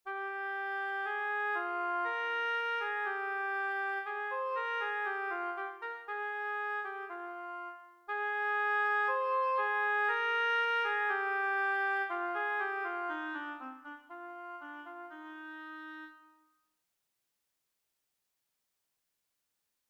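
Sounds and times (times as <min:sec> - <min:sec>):
oboe playing an etude: 0:00.1 - 0:16.5.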